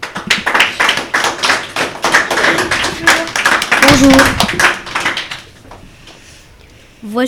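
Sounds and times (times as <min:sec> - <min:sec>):
small group applauding primary school pupils: 0:00.0 - 0:05.8
speech: 0:04.0 - 0:04.7, 0:07.0 - 0:07.2.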